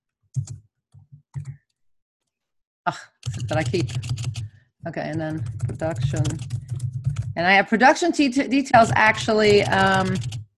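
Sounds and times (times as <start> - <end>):
typing on a computer keyboard: 0.4 - 0.6, 3.2 - 4.5, 5.1 - 7.4, 8.8 - 10.5
speech: 2.9 - 4.2, 4.8 - 6.6, 7.4 - 10.4.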